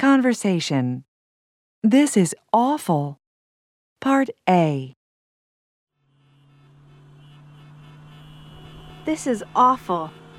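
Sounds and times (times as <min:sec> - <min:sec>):
speech: 0:00.1 - 0:01.1, 0:01.8 - 0:03.2, 0:04.0 - 0:05.0, 0:09.0 - 0:10.2
heavy road traffic roar from passing cars: 0:05.9 - 0:10.3.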